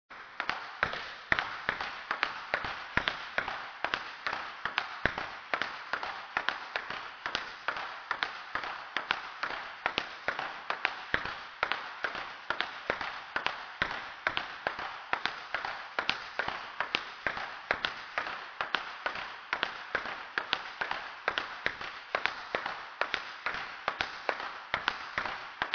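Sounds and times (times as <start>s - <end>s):
professional table tennis rally: 0.1s - 25.7s.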